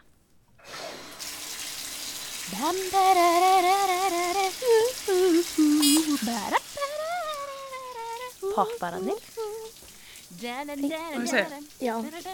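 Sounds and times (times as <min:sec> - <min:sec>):
steady hiss of a running shower: 0:00.6 - 0:12.3
speech: 0:02.5 - 0:04.1, 0:05.6 - 0:06.6, 0:08.6 - 0:09.5, 0:10.3 - 0:12.3
person singing a wavering melody: 0:02.5 - 0:09.8, 0:10.4 - 0:12.3.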